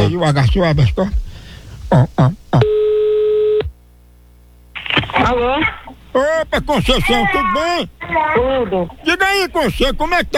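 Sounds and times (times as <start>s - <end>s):
speech: 0.0s - 1.2s, 1.9s - 2.8s, 5.3s - 10.3s
telephone line tone as a call is placed: 2.6s - 3.7s
laughter: 4.8s - 10.3s.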